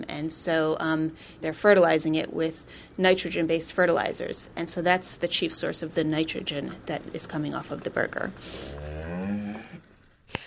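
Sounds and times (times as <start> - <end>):
speech: 0.2 - 9.2
cow mooing: 8.5 - 9.9.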